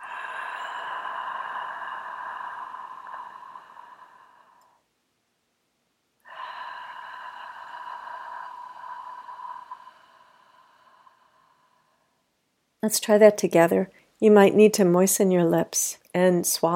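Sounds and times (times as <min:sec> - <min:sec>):
soft breathing in and out through the mouth: 0:00.0 - 0:04.9, 0:06.2 - 0:12.3
speech: 0:12.8 - 0:16.7.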